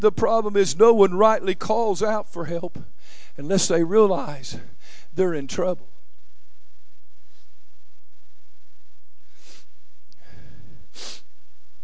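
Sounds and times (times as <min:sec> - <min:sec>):
speech: 0:00.0 - 0:05.9
quiet breathing: 0:02.8 - 0:03.4, 0:04.5 - 0:05.2, 0:06.7 - 0:11.5
man blowing his nose: 0:09.3 - 0:09.7, 0:10.9 - 0:11.4.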